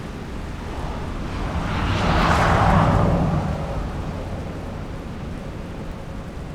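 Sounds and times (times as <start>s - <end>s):
car: 0.0s - 6.5s.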